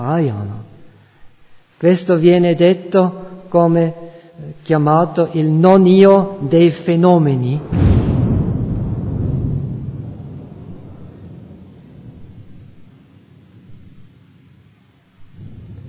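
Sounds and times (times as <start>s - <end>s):
speech: 0.0s - 0.7s, 1.8s - 7.8s
deep rumble of thunder: 5.7s - 15.8s.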